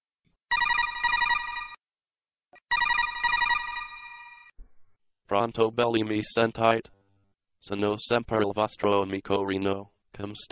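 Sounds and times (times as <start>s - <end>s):
incoming codec call ringing in a video game: 0.5s - 1.8s, 2.7s - 4.6s
speech: 5.3s - 7.0s, 7.6s - 10.4s.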